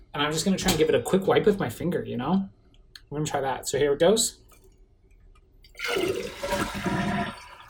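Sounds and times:
speech: 0.2 - 4.4, 5.8 - 6.8
toilet flushing with swirling gurgling water: 5.7 - 7.6.

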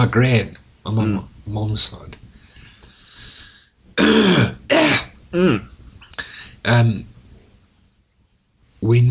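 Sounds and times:
speech: 0.0 - 2.2, 4.0 - 4.5, 5.3 - 5.6, 6.7 - 7.1, 8.9 - 9.0
coughing and throat clearing: 4.0 - 5.8.

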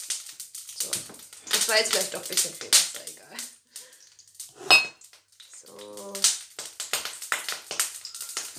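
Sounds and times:
hot frying pan sizzling on stove: 0.0 - 8.5
speech: 1.7 - 3.2.

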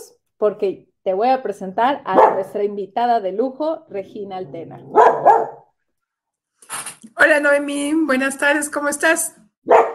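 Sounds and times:
speech: 0.4 - 5.3, 7.2 - 9.8
small dog barking: 2.1 - 2.5, 4.9 - 5.7, 9.6 - 9.9.

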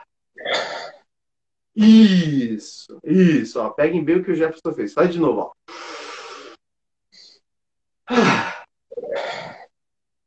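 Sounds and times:
speech: 1.8 - 5.9, 8.1 - 8.4
person inhaling forcefully in a breathing exercise: 5.7 - 6.6.

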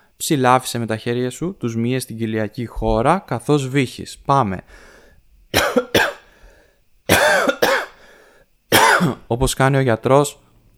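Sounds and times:
speech: 0.2 - 4.9, 9.3 - 10.4
person coughing deliberately: 5.5 - 6.3, 7.1 - 8.0, 8.7 - 9.3.

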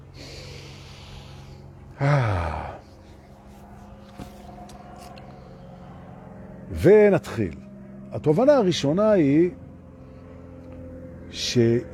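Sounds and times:
long deep breath drawn in through the nose: 0.0 - 1.8
speech: 2.0 - 2.6, 6.8 - 9.6, 11.4 - 11.9.

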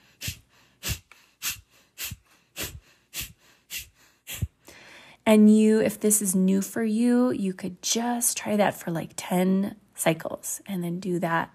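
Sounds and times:
rapid forceful breathing exercise with abdominal pumping exhales: 0.0 - 5.0
speech: 5.3 - 11.5.

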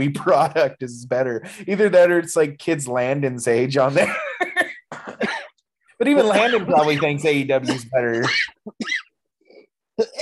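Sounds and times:
speech: 0.0 - 4.4, 6.0 - 9.0
person coughing harshly: 4.7 - 5.6, 6.2 - 9.1, 10.0 - 10.2.

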